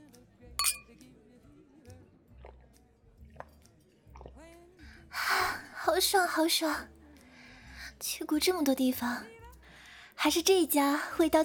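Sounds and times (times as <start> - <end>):
glasses clinking in a drinking toast: 0.6 - 0.8
speech: 6.0 - 6.9, 8.0 - 9.4, 10.2 - 11.4.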